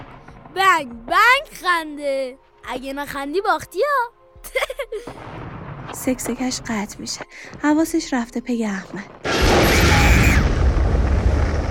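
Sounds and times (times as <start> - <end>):
speech: 0.6 - 9.4
explosion shaking a wall, deep rumbling roar: 9.2 - 11.7.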